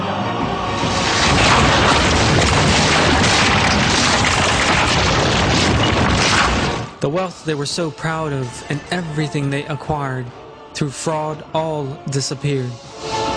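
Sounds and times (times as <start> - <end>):
deep explosion blast: 0.6 - 7.0
speech: 7.0 - 13.2.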